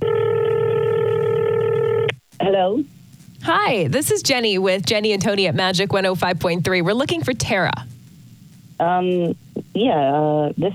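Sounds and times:
telephone tone while a number is dialed: 0.0s - 2.2s
speech: 2.4s - 7.9s, 8.8s - 10.7s.

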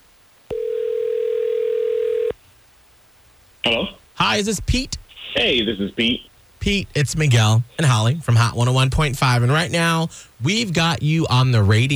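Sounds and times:
telephone dial tone while placing a call: 0.5s - 2.3s
speech: 3.6s - 11.9s.

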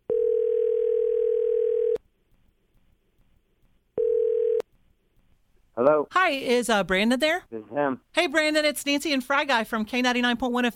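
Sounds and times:
telephone dial tone: 0.1s - 2.0s, 4.0s - 4.6s
speech: 5.8s - 10.7s.

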